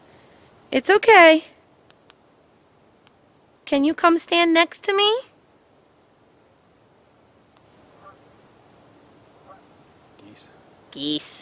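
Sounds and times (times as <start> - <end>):
steady outdoor noise: 0.0 - 11.4
speech: 0.7 - 1.5, 3.7 - 5.3, 11.0 - 11.4
geese honking: 7.9 - 8.3, 9.4 - 9.8.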